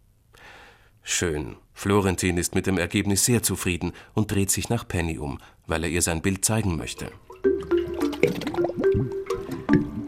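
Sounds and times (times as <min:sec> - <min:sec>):
speech: 0:01.1 - 0:07.8
liquid sloshing and dripping: 0:06.8 - 0:10.0
wet splashing and bubbly gurgling as a creature climbs out of a water jug: 0:06.8 - 0:10.0.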